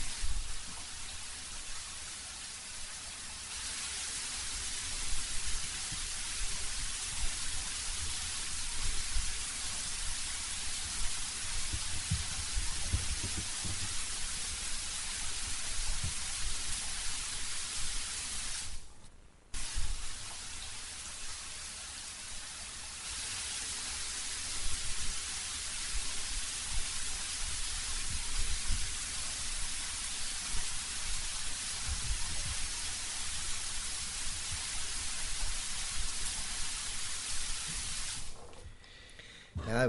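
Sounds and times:
steady rain falling at night: 0.0s - 18.9s, 19.5s - 38.6s
scattered raindrops pattering: 4.3s - 18.9s, 24.4s - 38.7s.

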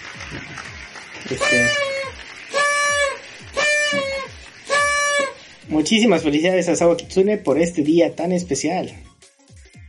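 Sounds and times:
speech: 1.3s - 2.0s, 5.7s - 9.1s
party horn blower noisemaker blasts: 1.3s - 5.6s.

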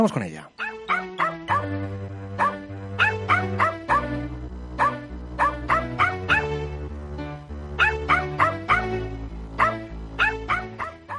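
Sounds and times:
speech: 0.0s - 0.5s
dog barking: 0.6s - 1.8s, 2.4s - 4.2s, 4.8s - 6.5s, 7.8s - 8.6s, 9.6s - 11.1s
musical backing with sustained low notes: 0.6s - 11.1s.

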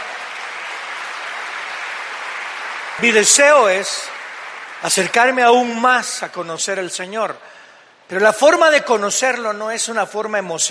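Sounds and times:
large crowd applauding loudly: 0.0s - 6.2s
speech: 3.0s - 4.1s, 4.8s - 10.7s.

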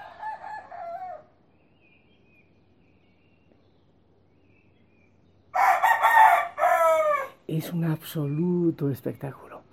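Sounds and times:
roosters crowing at dawn: 0.0s - 1.5s, 5.5s - 7.5s
speech: 7.5s - 9.5s.

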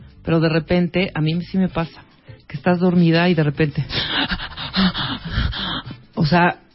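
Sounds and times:
speech: 0.3s - 5.5s, 6.2s - 6.6s
person imitating choking gasps: 3.9s - 6.1s.

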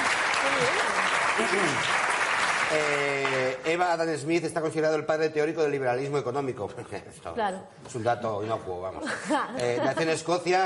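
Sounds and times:
crowd applauding: 0.0s - 3.8s
speech: 1.4s - 2.0s, 2.7s - 10.6s.

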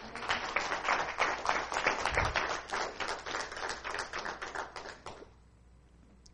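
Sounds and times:
audience applauding: 0.0s - 5.3s.

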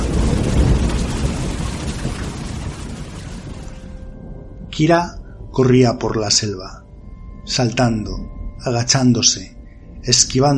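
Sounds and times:
stormy rain: 0.0s - 5.6s
deep thunder rumbling in a thunderstorm: 0.0s - 10.3s
speech: 4.8s - 6.8s, 7.5s - 10.5s.

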